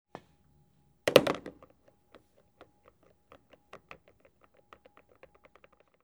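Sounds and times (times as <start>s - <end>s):
billiard ball hit into pocket: 1.1s - 1.7s.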